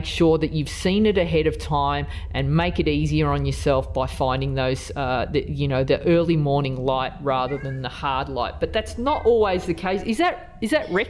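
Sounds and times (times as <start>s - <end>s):
speech: 0.0s - 11.0s
domestic cat meowing: 7.5s - 7.9s.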